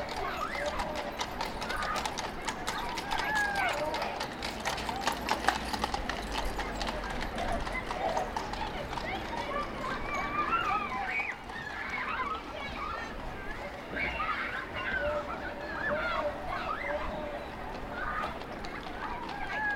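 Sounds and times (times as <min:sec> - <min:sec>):
horse whinnying: 0:00.0 - 0:04.3
children playing in backyards: 0:00.0 - 0:19.7
horse hooves clip-clopping: 0:00.0 - 0:19.7
horse-drawn carriages clattering over a street in an 18th-century city quarter: 0:00.0 - 0:19.7
voices and bustle: 0:00.0 - 0:19.7.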